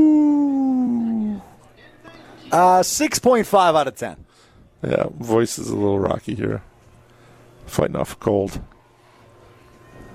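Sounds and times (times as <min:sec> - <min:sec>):
person imitating a wolf howl: 0:00.0 - 0:01.5
speech: 0:02.5 - 0:04.2, 0:04.8 - 0:06.7, 0:07.7 - 0:08.7.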